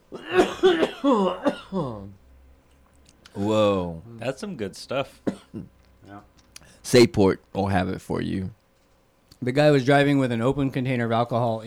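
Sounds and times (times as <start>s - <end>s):
several people coughing: 0.0s - 2.2s, 5.1s - 6.2s
throat clearing: 0.1s - 2.2s, 5.2s - 6.3s
speech: 0.7s - 2.2s, 3.4s - 8.6s, 9.4s - 11.6s.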